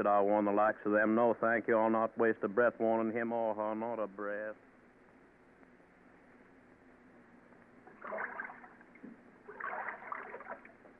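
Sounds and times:
speech: 0:00.0 - 0:04.7
water rushing and swishing against a sailboat's hull: 0:08.0 - 0:08.7, 0:09.5 - 0:10.8.

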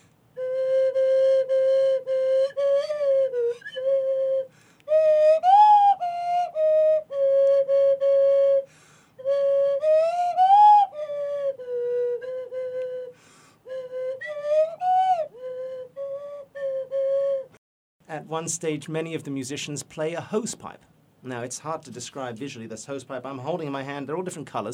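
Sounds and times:
slide whistle playing a melody with pitch bends: 0:00.4 - 0:17.6
speech: 0:18.3 - 0:24.7.

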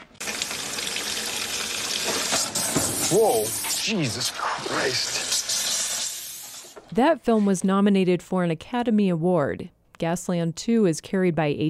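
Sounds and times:
water rushing from a faucet with gas seeping into the supply: 0:00.0 - 0:06.8
speech: 0:03.1 - 0:05.3, 0:07.0 - 0:11.6.

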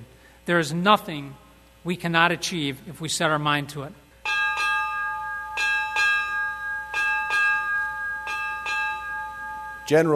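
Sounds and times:
speech: 0:00.5 - 0:04.0, 0:09.9 - 0:10.1
ship's bell ringing eight bells: 0:04.2 - 0:10.1.

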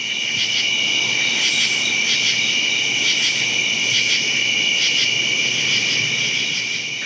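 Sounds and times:
high-pitched drone of thousands of crickets on the ground: 0:00.0 - 0:07.0
true katydids singing up in the trees around midnight: 0:00.8 - 0:04.4.

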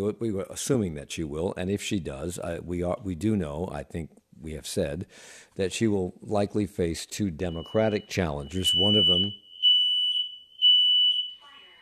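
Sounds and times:
speech: 0:00.0 - 0:09.4
smoke alarm beeping: 0:07.4 - 0:11.8.

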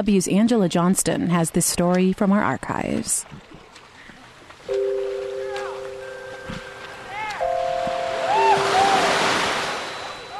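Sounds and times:
speech: 0:00.0 - 0:03.6
glassy bay water lapping and swishing: 0:02.5 - 0:10.3
swimmer emerging from bay water: 0:03.3 - 0:10.3
steady horn-like tones: 0:04.7 - 0:10.3.

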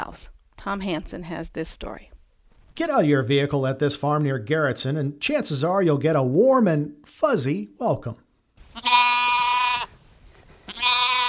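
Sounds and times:
speech: 0:00.2 - 0:02.1, 0:02.8 - 0:08.2
orphan lambs bleating on a farm: 0:08.6 - 0:09.9, 0:10.7 - 0:11.2.

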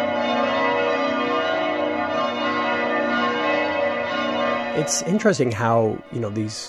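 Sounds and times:
church bells ringing in a continuous peal: 0:00.0 - 0:06.6
speech: 0:04.8 - 0:06.6.

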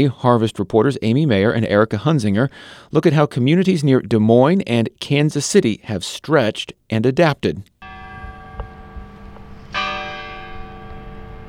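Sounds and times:
speech: 0:00.0 - 0:07.7
courthouse clock bell striking the hour in Adel Iowa: 0:07.8 - 0:11.4.

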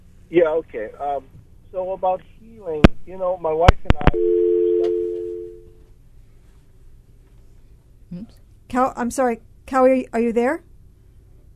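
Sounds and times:
speech: 0:00.3 - 0:04.5, 0:08.1 - 0:10.7
telephone dial tone from a dropped phone call: 0:04.2 - 0:05.7.

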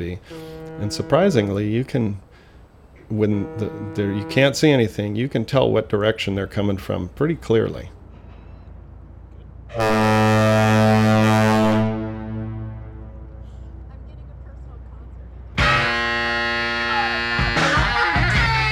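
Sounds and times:
deep loud bridge foghorn blaring in a long steady blast: 0:00.0 - 0:02.2, 0:03.1 - 0:05.2, 0:09.7 - 0:14.1, 0:15.5 - 0:18.6
speech: 0:00.0 - 0:02.3, 0:03.1 - 0:08.0.

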